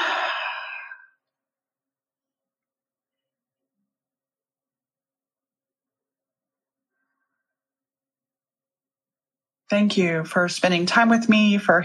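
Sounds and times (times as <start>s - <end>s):
deep breath in during a calm guided reflection: 0.0s - 1.2s
speech: 9.7s - 11.8s.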